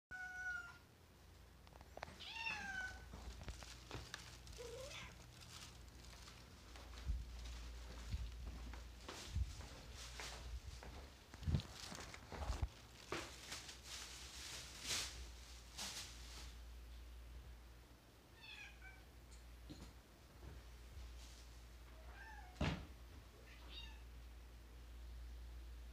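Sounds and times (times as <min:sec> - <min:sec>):
domestic cat meowing: 0:00.1 - 0:00.8, 0:02.2 - 0:03.1, 0:18.4 - 0:19.1, 0:23.4 - 0:24.1
low indoor rumble: 0:00.2 - 0:25.9
faint rustling: 0:01.6 - 0:16.7.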